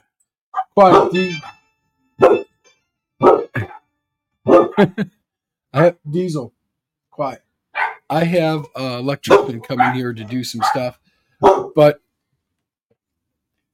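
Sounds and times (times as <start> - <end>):
dogs barking indoors at a home: 0.6 - 1.6, 2.2 - 2.5, 3.2 - 3.8, 4.4 - 4.9, 7.7 - 8.1, 9.2 - 11.9
speech: 0.8 - 1.6, 2.2 - 2.4, 4.8 - 6.6, 7.2 - 7.4, 8.1 - 12.0.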